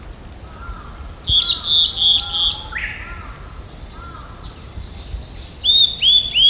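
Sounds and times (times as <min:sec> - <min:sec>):
blue-and-white flycatcher singing: 0:01.3 - 0:06.4.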